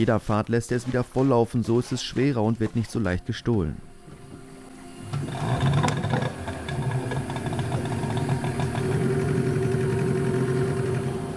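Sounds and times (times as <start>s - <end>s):
speech: 0.0s - 3.9s
boat motor droning on the Rio Magdalena Medio in Colombia: 4.0s - 11.3s.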